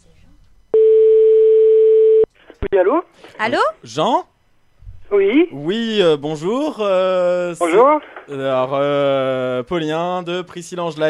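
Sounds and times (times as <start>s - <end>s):
telephone ringing tone on a call line: 0.7s - 2.3s
speech: 2.7s - 4.3s, 5.1s - 11.0s.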